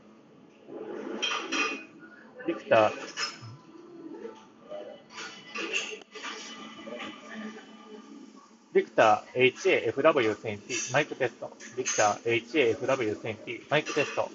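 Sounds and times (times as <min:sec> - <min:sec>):
dishes and cutlery clinking and clattering in a busy café: 0:01.0 - 0:02.0, 0:02.8 - 0:03.6, 0:05.1 - 0:07.2, 0:09.8 - 0:14.3
café chatter: 0:01.8 - 0:14.3
speech: 0:02.4 - 0:03.3, 0:08.8 - 0:14.3.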